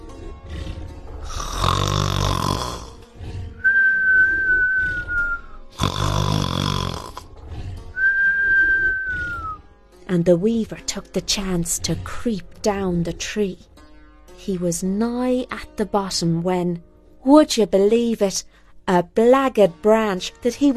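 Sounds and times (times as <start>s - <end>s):
dragon snoring loudly: 0.0s - 9.7s
thin whistling exhale: 3.6s - 5.6s, 7.9s - 9.6s
speech: 10.1s - 13.7s, 14.4s - 20.7s.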